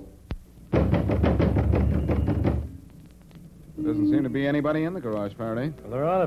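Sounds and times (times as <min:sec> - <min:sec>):
loud heavy knocking on a door: 0:00.7 - 0:02.7
speech: 0:04.7 - 0:06.2.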